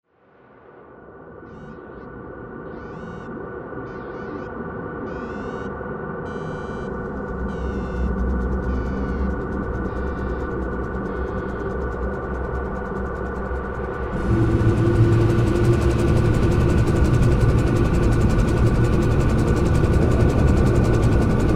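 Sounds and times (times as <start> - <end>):
helicopter: 6.9 - 21.5.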